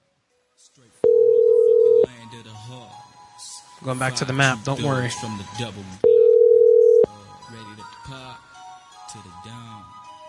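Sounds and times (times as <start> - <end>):
ringback tone of an outgoing telephone call: 1.0 - 2.1, 6.0 - 7.1
speech: 2.4 - 6.0, 9.1 - 9.7.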